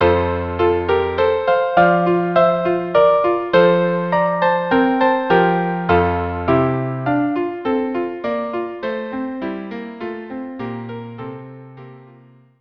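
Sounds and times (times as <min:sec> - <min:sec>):
violin: 0:00.0 - 0:09.8
piano: 0:00.0 - 0:12.5.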